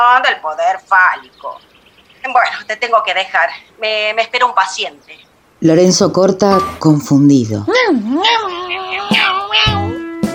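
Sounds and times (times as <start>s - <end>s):
speech: 0.0s - 9.8s
tomcat meowing while chasing a female kitten: 8.0s - 10.2s.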